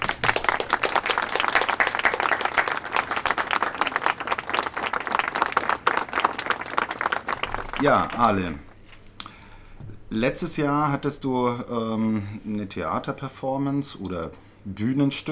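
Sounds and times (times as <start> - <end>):
audience applause with many hands clapping: 0.0 - 8.6
speech: 7.8 - 8.7, 10.1 - 15.3.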